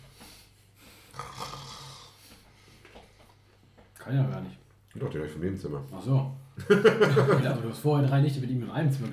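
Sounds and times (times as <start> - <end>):
soft breathing snorts: 0.2 - 2.8
loud rasping snoring of a person: 1.1 - 2.2
speech: 4.1 - 9.1
laughter: 6.6 - 7.6.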